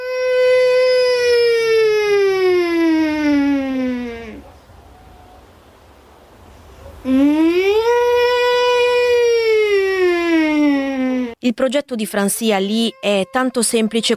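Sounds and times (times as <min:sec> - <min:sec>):
child's voice imitating an air raid siren: 0:00.0 - 0:04.4, 0:07.1 - 0:11.4
speech: 0:11.5 - 0:14.1.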